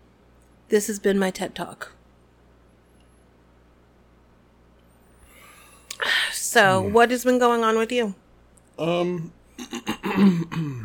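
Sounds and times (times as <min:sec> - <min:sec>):
speech: 0:00.7 - 0:02.0, 0:06.6 - 0:08.2, 0:08.8 - 0:10.8
person humming or groaning: 0:06.7 - 0:07.0
person clearing throat: 0:09.6 - 0:10.8.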